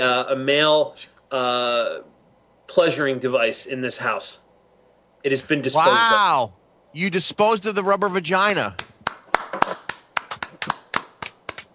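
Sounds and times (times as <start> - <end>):
speech: 0.0 - 2.1, 2.7 - 4.4, 5.2 - 8.9
light half-hearted applause from a small group: 8.5 - 11.7.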